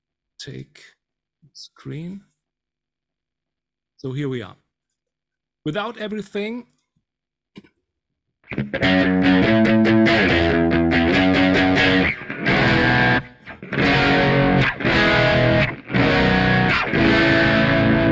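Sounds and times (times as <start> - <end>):
speech: 0.4 - 2.3, 4.0 - 4.6, 5.6 - 6.8, 8.5 - 10.7
electric guitar with three single-coil pickups through fuzz effect on a Kemper Profiler: 8.5 - 18.1.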